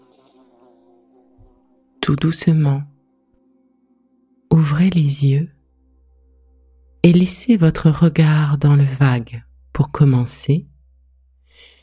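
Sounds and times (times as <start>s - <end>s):
housefly buzzing: 0.0s - 2.0s
speech: 2.1s - 2.9s, 4.7s - 5.6s, 7.0s - 10.7s.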